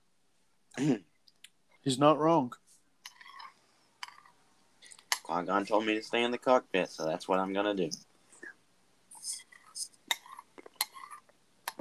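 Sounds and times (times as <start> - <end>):
speech: 0.8 - 1.1, 1.8 - 2.6, 5.3 - 8.1
spoon scraping an ice cream bowl: 3.1 - 4.4, 9.3 - 11.3.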